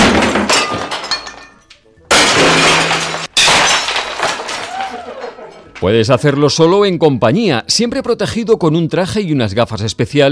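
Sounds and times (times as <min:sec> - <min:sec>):
old furniture being smashed in a rage room: 0:00.0 - 0:01.5, 0:02.1 - 0:05.2
plates and glassware being smashed in a rage room: 0:00.0 - 0:05.8
speech: 0:05.8 - 0:10.3.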